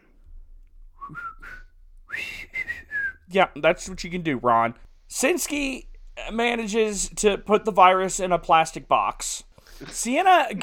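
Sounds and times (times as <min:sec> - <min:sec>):
person whistling a short bright melody: 0:01.0 - 0:03.3
speech: 0:01.1 - 0:01.5, 0:03.3 - 0:10.6.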